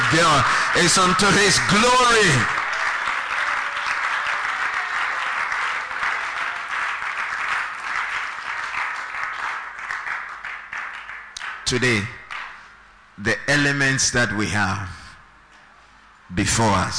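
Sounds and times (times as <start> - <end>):
audience at a church service clapping: 0.0 - 12.7
speech: 0.1 - 2.6, 11.7 - 12.2, 13.2 - 15.0, 16.3 - 16.9.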